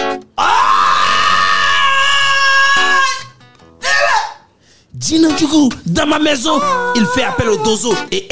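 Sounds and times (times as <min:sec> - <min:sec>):
narrator imitating a man's scream: 0:00.4 - 0:04.4, 0:06.4 - 0:08.1
speech: 0:05.1 - 0:08.2
strained vocal bursts: 0:06.4 - 0:08.0.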